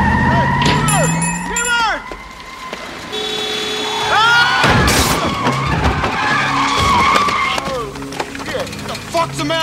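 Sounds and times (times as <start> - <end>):
car tires squealing and skidding: 0.0 - 1.1, 1.9 - 9.0
car slamming into another car: 0.1 - 7.5.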